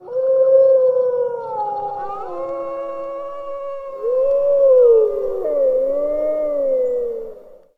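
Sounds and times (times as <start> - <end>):
wolf howling: 0.0 - 7.7.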